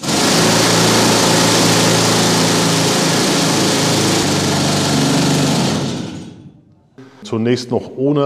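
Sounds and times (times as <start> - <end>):
pneumatic compressed-air hammer rock drill as used underground in mining: 0.0 - 6.5
speech: 7.3 - 8.2.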